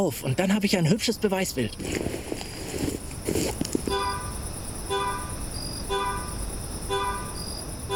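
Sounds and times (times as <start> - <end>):
speech: 0.0 - 2.4
hissy outdoor background: 0.0 - 7.9
scuffing sounds: 1.8 - 4.0
Dodge car horn honking: 3.9 - 7.9.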